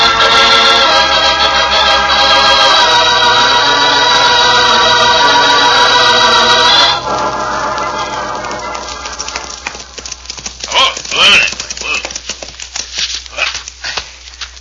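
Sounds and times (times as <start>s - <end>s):
harmonic music background: 0.0s - 10.3s
horse hooves clip-clopping: 6.9s - 14.5s.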